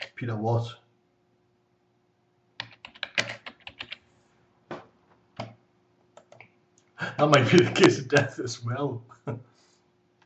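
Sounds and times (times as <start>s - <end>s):
speech: 0.2s - 0.8s, 7.2s - 9.5s
typing an email on a computer keyboard: 2.6s - 4.0s, 6.2s - 6.4s
laughter: 7.0s - 8.5s.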